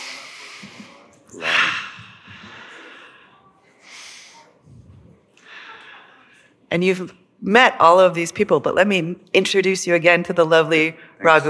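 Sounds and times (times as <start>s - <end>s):
slow deep breaths taken together in a guided session: 0.0s - 6.6s
speech: 6.7s - 11.4s.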